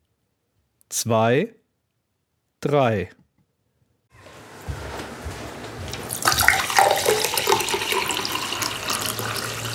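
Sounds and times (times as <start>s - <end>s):
speech: 1.0s - 1.6s, 2.6s - 3.2s
liquid pouring into a glass: 6.1s - 9.7s.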